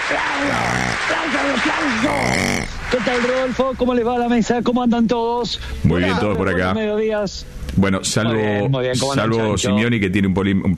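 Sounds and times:
applause welcoming a guest: 0.0 - 3.7
speech: 0.1 - 10.7.

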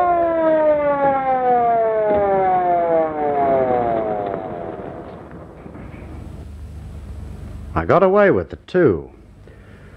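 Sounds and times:
ambulance siren wailing: 0.0 - 6.0
speech: 7.8 - 9.2.

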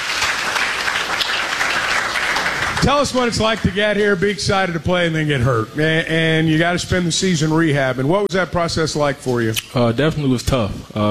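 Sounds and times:
audience applause: 0.0 - 4.0
speech: 2.8 - 11.0.

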